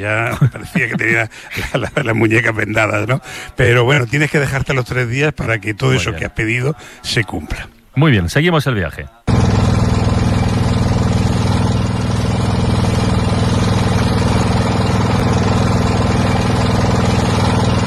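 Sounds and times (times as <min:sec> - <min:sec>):
laughter: 0:00.0 - 0:03.2, 0:05.8 - 0:06.8
speech: 0:00.0 - 0:09.2
boat engine running on a river trip in Laos: 0:09.3 - 0:17.8.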